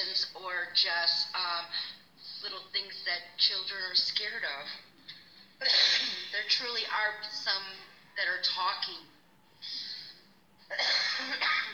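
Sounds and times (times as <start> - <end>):
speech: 0.6 - 4.9, 5.6 - 9.8, 10.7 - 11.7
person coughing: 5.6 - 6.4, 10.7 - 11.7.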